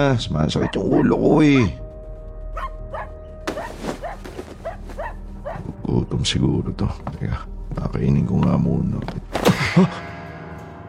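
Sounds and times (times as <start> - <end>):
speech: 0.0 - 1.8, 6.2 - 10.1
dog barking: 0.6 - 1.8, 2.6 - 5.7.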